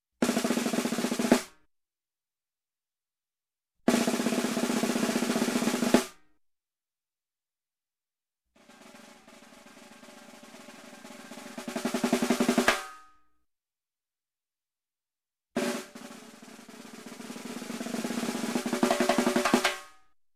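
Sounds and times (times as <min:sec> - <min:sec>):
snare drum roll with snares off: 0:00.2 - 0:01.5, 0:03.9 - 0:06.2, 0:08.6 - 0:13.0, 0:15.6 - 0:19.9.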